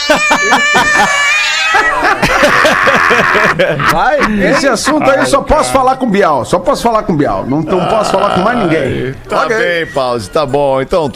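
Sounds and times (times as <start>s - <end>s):
cat meowing: 0.0s - 2.0s
rhythmic laughter: 0.0s - 5.8s, 7.7s - 8.8s
speech: 0.1s - 11.1s.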